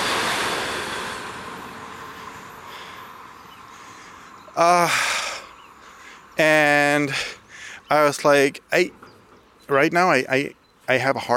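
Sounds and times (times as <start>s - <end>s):
passing train rumble: 0.0s - 4.8s
speech: 4.6s - 5.1s, 6.4s - 9.0s, 9.7s - 11.3s.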